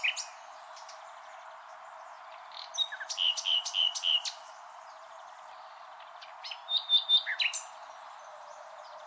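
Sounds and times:
common nightingale Luscinia megarhynchos song phrase: 0.0s - 9.0s.

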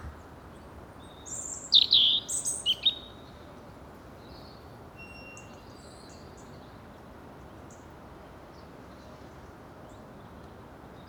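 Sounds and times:
European robin Erithacus rubecula singing: 1.7s - 3.1s.

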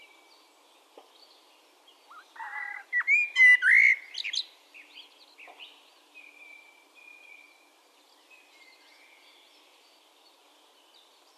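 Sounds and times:
Eurasian blackbird Turdus merula twittering: 2.1s - 4.5s
Eurasian blackbird Turdus merula fluty whistles with buzzy squeaky notes: 2.4s - 4.3s.

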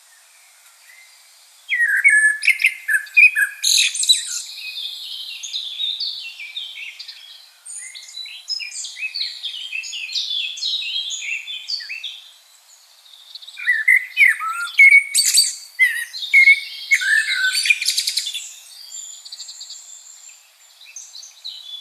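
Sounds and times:
Common blackbird Turdus merula singing: 0.9s - 21.8s.

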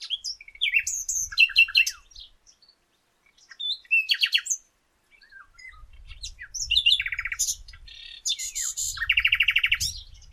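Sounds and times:
common nightingale Luscinia megarhynchos singing: 0.0s - 10.3s.

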